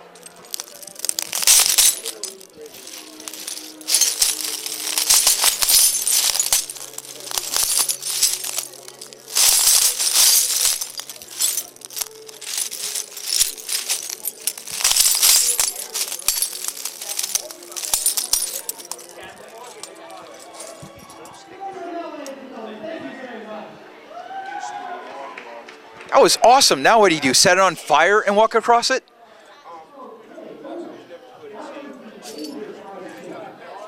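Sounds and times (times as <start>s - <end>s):
broken glass pieces clinking and crunching: 0.0s - 21.2s
speech: 26.2s - 29.1s.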